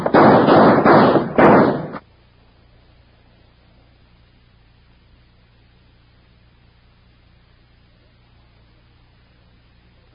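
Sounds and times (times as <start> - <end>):
gunshots in a radio drama shootout: 0.0 - 2.0.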